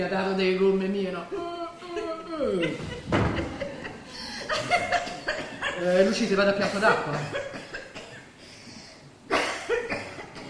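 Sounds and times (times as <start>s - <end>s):
speech: 0.0s - 1.6s, 2.4s - 3.3s, 5.8s - 7.5s
laughter: 1.8s - 6.1s
woman coughing: 5.0s - 8.3s, 9.3s - 10.4s.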